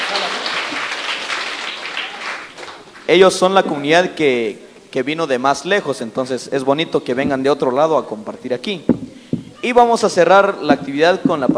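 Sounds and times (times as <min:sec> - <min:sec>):
audience applause at a community gathering: 0:00.0 - 0:03.1
speech: 0:03.1 - 0:11.5.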